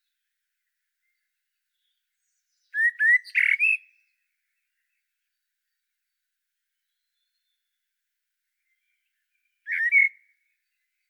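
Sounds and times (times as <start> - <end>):
Common blackbird Turdus merula giving a two-part whistled call: 2.8 - 3.9, 9.7 - 10.2.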